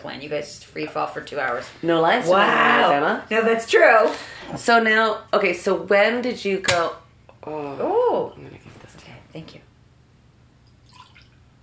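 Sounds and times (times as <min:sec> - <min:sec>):
speech: 0:00.0 - 0:08.5
steady low hum: 0:00.0 - 0:11.6
liquid being poured: 0:10.6 - 0:11.5.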